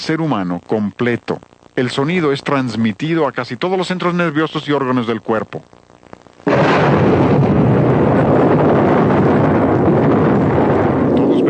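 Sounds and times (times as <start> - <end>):
speech: 0.0 - 5.8
explosion: 6.4 - 11.4.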